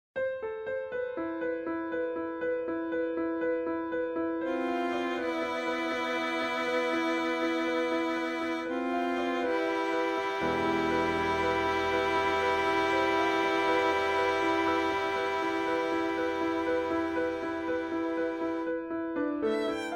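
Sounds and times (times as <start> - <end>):
piano: 0.2 - 19.9
violin: 4.5 - 19.9.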